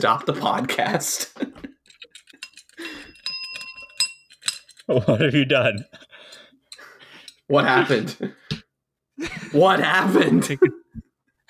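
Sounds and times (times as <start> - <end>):
speech: 0.0 - 1.4, 4.9 - 6.0, 7.5 - 8.4, 9.2 - 10.8
small bell clicking and rattling: 1.8 - 4.9.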